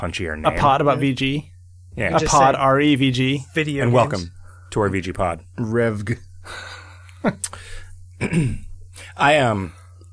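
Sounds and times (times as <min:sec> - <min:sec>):
speech: 0:00.0 - 0:09.8
steady low hum: 0:00.0 - 0:10.1
person clearing throat: 0:08.2 - 0:08.8.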